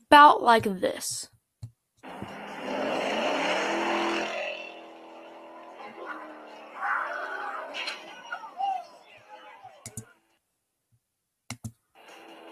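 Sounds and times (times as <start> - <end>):
speech: 0.1 - 1.4
Mustang car engine revving while leaving a car meet: 2.0 - 8.7
sharp clicks: 11.5 - 11.8.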